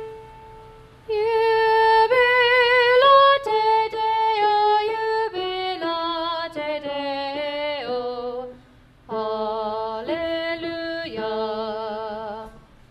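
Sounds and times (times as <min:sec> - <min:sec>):
treble alto voice singing: 0:01.1 - 0:12.7.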